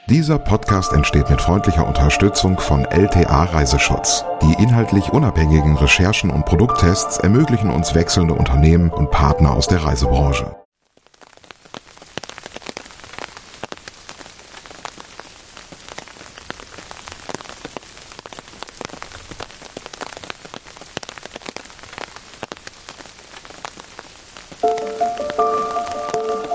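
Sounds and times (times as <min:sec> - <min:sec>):
speech: 0:00.1 - 0:10.6
dense raindrops pattering on a rain hood: 0:10.7 - 0:26.5.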